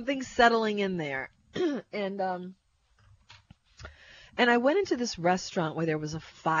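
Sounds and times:
speech: 0:00.0 - 0:02.6, 0:04.4 - 0:06.5
man clearing his throat: 0:01.6 - 0:01.9.

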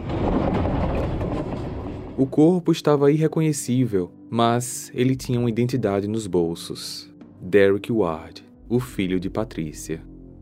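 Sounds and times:
train passing with wheels rumbling on rails: 0:00.0 - 0:02.4
speech: 0:02.2 - 0:10.1.

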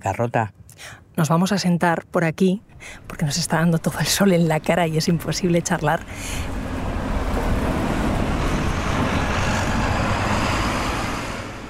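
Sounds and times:
speech: 0:00.0 - 0:06.7
bus driving past outdoors with engine rumble and road roar: 0:02.6 - 0:11.6.

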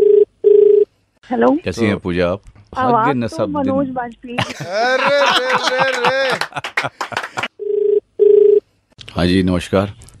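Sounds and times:
outgoing phone call ringback tone: 0:00.0 - 0:00.9, 0:07.6 - 0:08.6
speech: 0:01.3 - 0:07.4, 0:09.2 - 0:10.0
busy, choppy vocal sound: 0:02.8 - 0:06.4
laughter: 0:04.4 - 0:07.5.

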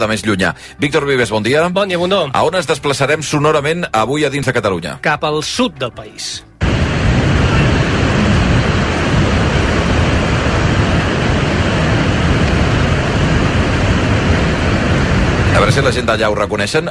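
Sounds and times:
speech: 0:00.0 - 0:06.5, 0:15.6 - 0:16.9
strong wind roaring: 0:06.6 - 0:16.8
sea surf crashing and hissing: 0:06.6 - 0:16.9.

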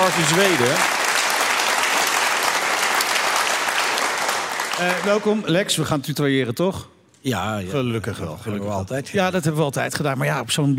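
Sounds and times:
sizable audience applauding: 0:00.0 - 0:05.5
speech: 0:00.1 - 0:01.0, 0:04.8 - 0:10.7.

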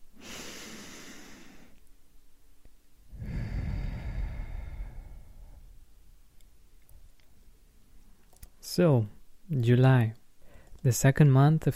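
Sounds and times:
slow deep breath in: 0:00.2 - 0:01.8, 0:03.1 - 0:05.8
speech: 0:08.8 - 0:10.2, 0:10.8 - 0:11.7.

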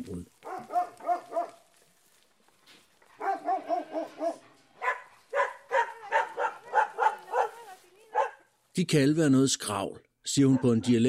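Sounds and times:
stray shepherd dogs barking on mountain roads in southern Italy: 0:00.4 - 0:01.7, 0:03.1 - 0:08.5, 0:10.4 - 0:11.0
speech: 0:08.8 - 0:11.0.

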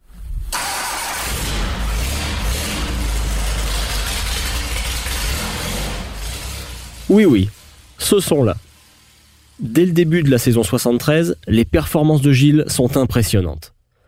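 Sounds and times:
single-seater race car engine roaring: 0:00.6 - 0:11.6
speech: 0:07.1 - 0:08.7, 0:09.6 - 0:13.7.

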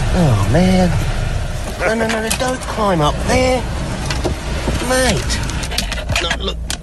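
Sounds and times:
speech: 0:00.2 - 0:01.2, 0:01.8 - 0:03.8, 0:04.8 - 0:05.5, 0:06.2 - 0:06.6
koala scrabbling and clambering inside a parked car: 0:01.5 - 0:02.4
wordless voice sounds: 0:01.5 - 0:02.4.

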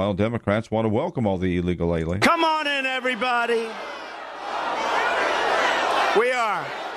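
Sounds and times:
speech: 0:00.0 - 0:04.0, 0:06.1 - 0:06.8
large crowd chanting at a presidential campaign rally: 0:02.4 - 0:06.9.

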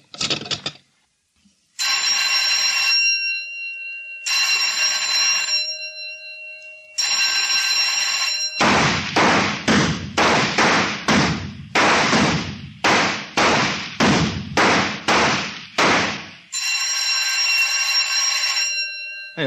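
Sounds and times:
electric bell signals at a shooting range: 0:01.8 - 0:08.7, 0:16.5 - 0:19.4
rapid-fire gunshots at a shooting range: 0:08.6 - 0:16.4.

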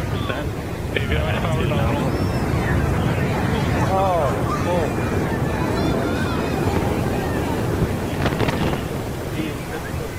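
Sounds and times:
laughter: 0:00.0 - 0:09.4
speech: 0:00.3 - 0:02.4, 0:03.9 - 0:05.3
Antares rocket exploding shortly after launch: 0:02.2 - 0:09.6
crackling burst of Antares rocket explosion: 0:03.0 - 0:09.9.

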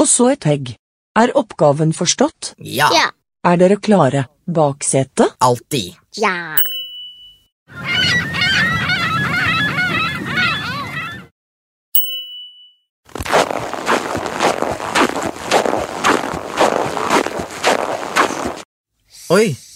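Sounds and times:
speech: 0:00.0 - 0:06.7, 0:19.3 - 0:19.7
squawking seagull calls: 0:07.7 - 0:11.3
crunching footsteps: 0:13.1 - 0:18.6.

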